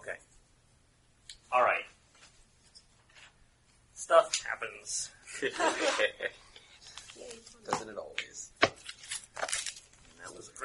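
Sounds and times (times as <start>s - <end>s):
speech: 4.8s - 6.5s, 7.2s - 8.6s
laughter: 5.3s - 6.4s
deck of playing cards being shuffled: 6.8s - 10.6s.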